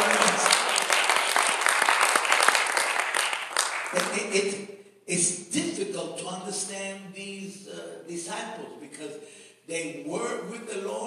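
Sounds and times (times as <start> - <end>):
crowd applauding during a worship service: 0.0 - 4.4
speech: 4.3 - 11.0.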